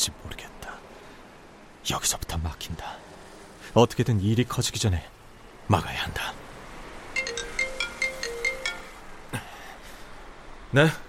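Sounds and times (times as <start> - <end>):
speech: 1.9 - 6.4, 10.7 - 11.0
phone ringtone with repeating melodic pattern of bright tones: 7.1 - 9.2.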